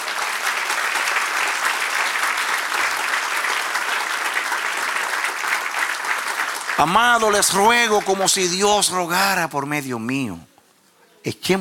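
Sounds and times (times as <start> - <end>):
audience applauding: 0.0 - 9.1
speech: 6.8 - 10.5, 11.2 - 11.5.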